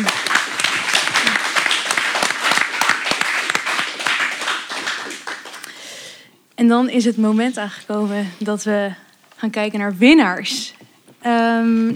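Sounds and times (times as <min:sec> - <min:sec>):
crowd applauding: 0:00.0 - 0:05.8
speech: 0:06.6 - 0:11.9.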